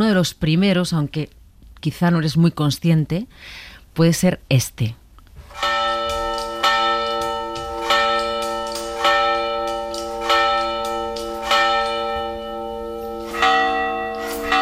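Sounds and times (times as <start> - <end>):
speech: 0.0 - 5.0
church bells ringing: 5.5 - 14.6.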